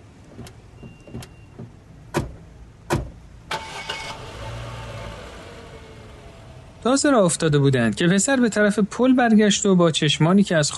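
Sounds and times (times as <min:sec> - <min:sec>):
car engine cranking, starting and driving off: 0:00.0 - 0:08.1
clicks and thumps: 0:00.3 - 0:03.2
car door shutting: 0:00.3 - 0:03.8
speech: 0:00.4 - 0:00.6, 0:06.8 - 0:10.7.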